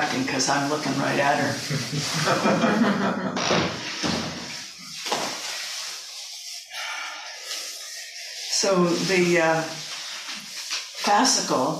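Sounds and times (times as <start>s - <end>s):
broadband scraping and rustling bursts: 0.0s - 2.8s, 3.7s - 11.7s
speech: 0.0s - 4.0s, 8.6s - 9.9s, 11.1s - 11.7s
laughter: 1.6s - 3.4s
door being pushed shut: 3.4s - 4.5s.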